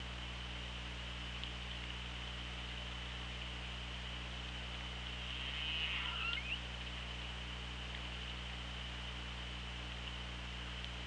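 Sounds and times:
constant hiss: 0.0 - 11.0
low droning hum on hydrophone: 0.0 - 11.0
orca whistle-like calls underwater: 5.2 - 6.7.

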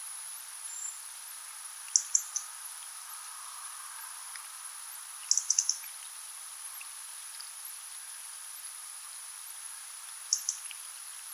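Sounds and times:
steady high hiss: 0.0 - 11.3
European robin Erithacus rubecula tick calls: 1.8 - 4.6, 5.2 - 6.1, 10.2 - 10.9.

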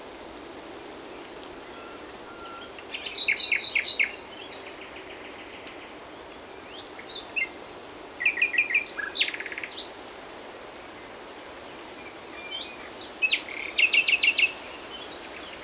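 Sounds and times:
common nightingale Luscinia megarhynchos singing: 1.6 - 9.9, 12.0 - 15.6.

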